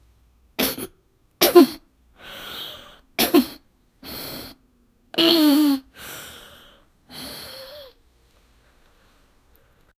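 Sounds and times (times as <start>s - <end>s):
person sneezing: 0.6s - 1.8s, 2.4s - 4.6s, 5.2s - 5.9s.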